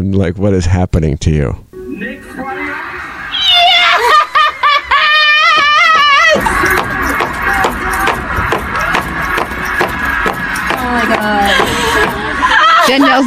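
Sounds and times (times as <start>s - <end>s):
speech: 0.0s - 1.7s, 12.9s - 13.2s
person squealing and laughing loudly: 2.5s - 9.0s, 10.8s - 13.2s
heavy foot stomps: 5.6s - 12.4s.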